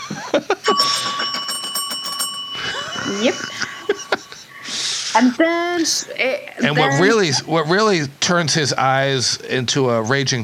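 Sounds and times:
bell ringing with a bright sustained metallic tone: 0:00.7 - 0:05.4
speech: 0:03.1 - 0:03.6, 0:05.2 - 0:10.4.

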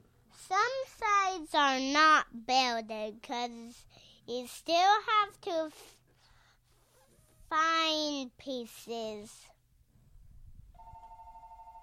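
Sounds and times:
speech: 0:01.4 - 0:06.0, 0:07.5 - 0:09.5
telephone with electronic ring tone ringing: 0:10.8 - 0:11.8.

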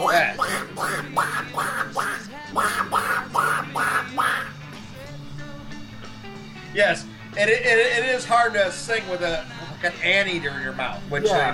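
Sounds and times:
voice imitating cartoon duck quacks: 0:00.0 - 0:04.6
speech: 0:00.1 - 0:01.8, 0:06.8 - 0:11.5.

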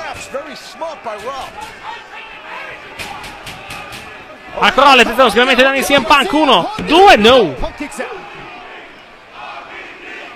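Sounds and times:
large wrestling arena crowd yelling and roaring: 0:00.0 - 0:10.3
speech: 0:00.2 - 0:03.0, 0:04.6 - 0:08.2.

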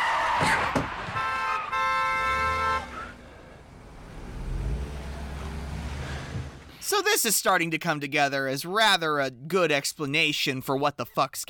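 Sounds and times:
low rumble of passing traffic: 0:00.3 - 0:06.8
car horns honking in a near collision at an intersection: 0:00.4 - 0:06.7
speech: 0:07.1 - 0:11.4.

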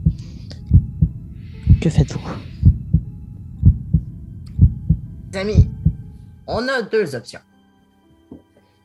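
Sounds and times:
deep heartbeat thumping: 0:00.0 - 0:06.2
faint hum: 0:00.0 - 0:06.5
speech: 0:01.8 - 0:02.5, 0:05.4 - 0:05.7, 0:06.5 - 0:07.5.

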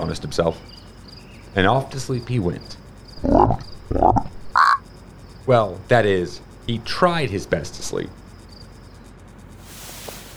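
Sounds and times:
speech: 0:00.0 - 0:00.8, 0:01.5 - 0:04.2, 0:05.5 - 0:08.2
frog croaking raspily at night: 0:00.6 - 0:06.8.

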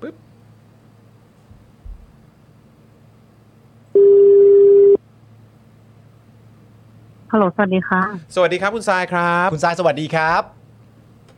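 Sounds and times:
low quiet hum: 0:00.0 - 0:11.3
telephone call tone while a call is being dialled: 0:04.0 - 0:05.0
speech: 0:07.3 - 0:10.6.

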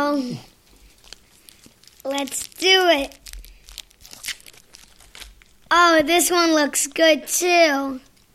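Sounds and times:
speech: 0:00.1 - 0:00.6, 0:02.0 - 0:03.2, 0:05.7 - 0:08.1
candy bar wrapper being torn open: 0:00.7 - 0:06.3.

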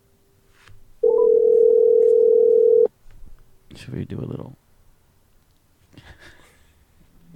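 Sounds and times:
telephone dial tone: 0:01.1 - 0:02.9
speech: 0:03.9 - 0:04.6.

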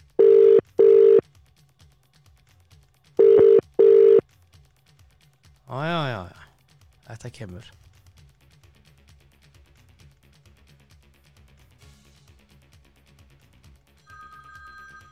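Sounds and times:
telephone ringing in a rapid continuous bell trill: 0:00.2 - 0:01.2, 0:03.2 - 0:04.2, 0:14.0 - 0:15.1
speech: 0:05.7 - 0:06.3, 0:07.2 - 0:07.9.

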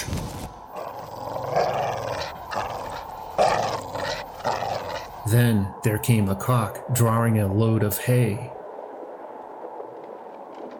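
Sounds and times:
dog growling: 0:00.7 - 0:05.3
speech: 0:05.3 - 0:08.6.

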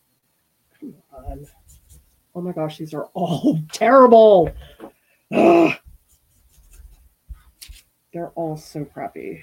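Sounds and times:
speech: 0:00.8 - 0:01.8, 0:02.4 - 0:05.8, 0:08.2 - 0:09.4
dried-out marker scribbling on parchment paper: 0:01.3 - 0:02.2, 0:05.9 - 0:07.8.

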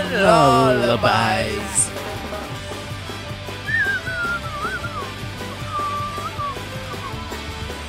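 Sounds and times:
steady music: 0:00.0 - 0:07.8
speech: 0:00.1 - 0:02.0
person attempting to whistle a tune: 0:03.6 - 0:07.4.

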